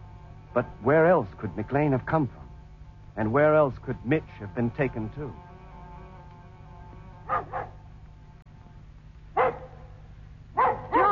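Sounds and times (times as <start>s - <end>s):
steady low hum: 0.0s - 11.1s
speech: 0.6s - 2.4s, 3.2s - 5.5s
dog barking: 7.3s - 7.8s, 9.4s - 9.9s, 10.6s - 11.1s.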